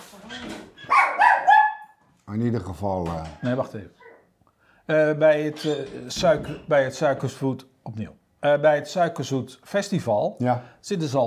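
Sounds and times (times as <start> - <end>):
dog barking high-pitched while chasing a cat: 0.9 - 2.0, 4.0 - 4.3
speech: 2.3 - 4.0, 4.9 - 11.2.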